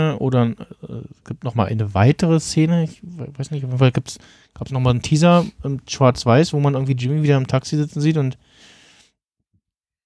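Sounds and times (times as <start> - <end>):
speech: 0.0 - 8.7
person sneezing: 5.3 - 5.6
person sniffling: 5.3 - 5.6.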